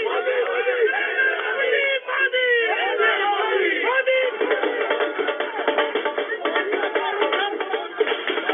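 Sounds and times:
large crowd chanting and shouting slogans: 0.0 - 8.5
dhol drums: 3.9 - 8.5.

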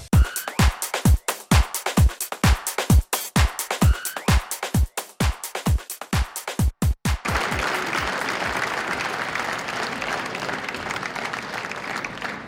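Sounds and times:
sharp rhythmic strikes: 0.1 - 7.6
crowd clapping opening a Sufi music concert in an assembly hall: 5.2 - 12.4.

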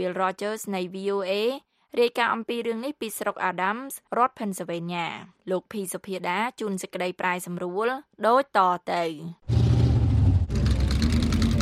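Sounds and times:
speech: 0.0 - 9.5
vintage racing car engines roaring at a fair in Adams County, Pennsylvania: 9.5 - 11.5.

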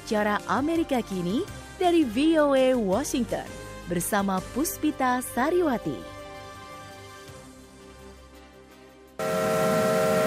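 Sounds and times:
speech: 0.1 - 6.1
big heritage railroad steam locomotive whistle: 9.2 - 10.2.

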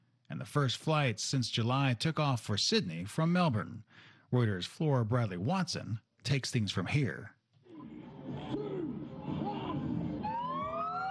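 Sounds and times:
speech: 0.4 - 7.4
indistinct voices: 7.6 - 10.7
siren wailing: 7.8 - 11.0.

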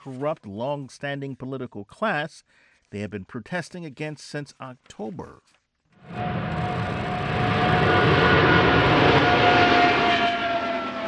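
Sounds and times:
speech: 0.0 - 6.7
twin-engine jet airliner roaring overhead: 6.0 - 11.0.

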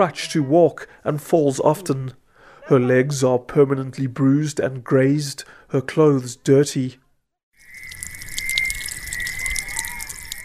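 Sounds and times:
speech: 0.0 - 7.0
stream water flowing and trickling: 7.6 - 10.4
thin high tone: 7.6 - 10.4.

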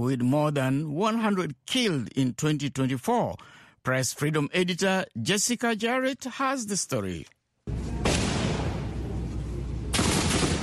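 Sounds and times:
speech: 0.0 - 7.4
low rumbling background: 7.7 - 10.4
heavy gunfire bursts: 9.9 - 10.6.

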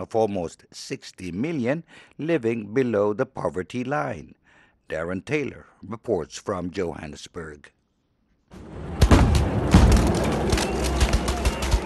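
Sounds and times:
speech: 0.0 - 7.8
continuous rough din: 8.6 - 11.8
police firing rubber bullets at looters: 8.8 - 11.8
rapid fusillade of sharp bangs and thuds: 8.8 - 11.8.

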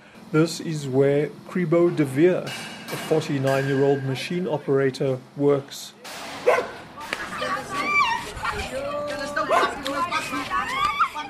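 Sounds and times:
speech: 0.3 - 6.0
indistinct voices murmuring: 3.3 - 11.2
several stray dogs barking and yelping outdoors on a dusty dead-end street: 6.4 - 8.7, 9.4 - 11.2.

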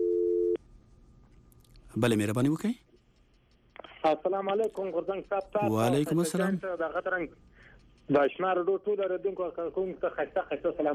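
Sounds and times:
electronic telephone line tone signalling an incoming caller on a call-in line: 0.0 - 0.6
speech: 2.0 - 2.9, 4.0 - 7.5, 8.1 - 10.9.

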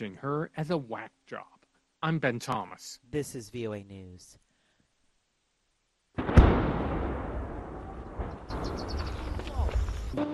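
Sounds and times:
speech: 0.0 - 4.4, 10.1 - 10.3
faint outdoor noise: 0.0 - 10.3
booming explosion in the Zaporizhia region of Ukraine: 6.2 - 10.1
long low thundering rumble: 6.3 - 10.2.

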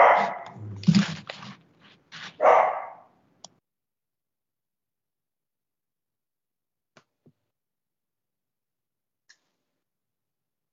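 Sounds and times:
dog barking: 0.0 - 0.7, 2.4 - 3.1.

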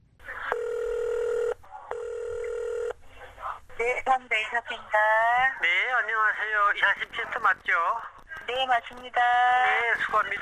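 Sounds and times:
electronic ringback tones over a phone line: 0.5 - 3.0
speech: 3.8 - 10.4.

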